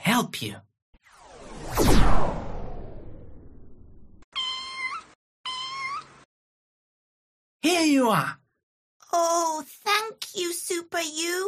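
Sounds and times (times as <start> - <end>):
speech: 0.2 - 0.7, 7.6 - 8.4, 9.1 - 11.4
cat stuck up a tree meowing: 4.3 - 6.2.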